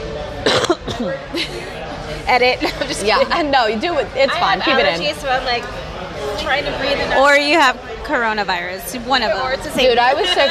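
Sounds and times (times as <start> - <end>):
person coughing: 0.4 - 1.2
speech: 1.0 - 5.8, 6.4 - 10.4
laughter: 1.3 - 3.5, 9.8 - 10.4.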